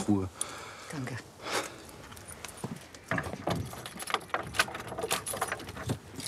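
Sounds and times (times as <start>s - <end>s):
speech: 0.1s - 1.3s
uneven metallic clicks and knocks of a door lock: 3.0s - 6.2s
keys jangling and rattling in a lock: 3.2s - 6.2s.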